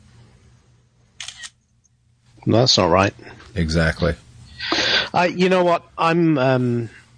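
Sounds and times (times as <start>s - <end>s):
faint low hum: 0.0s - 7.1s
iPhone camera shutter double click: 1.2s - 1.6s
speech: 2.4s - 7.0s.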